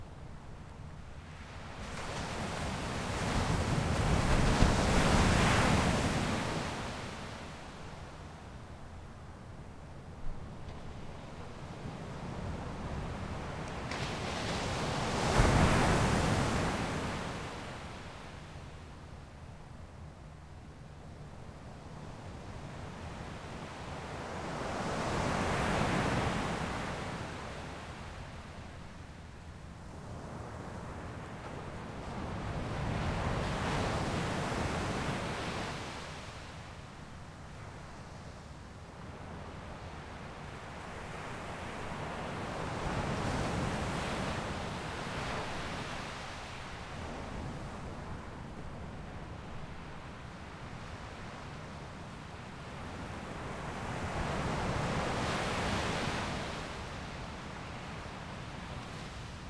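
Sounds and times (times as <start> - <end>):
waves near a small bridge: 0.0 - 59.4.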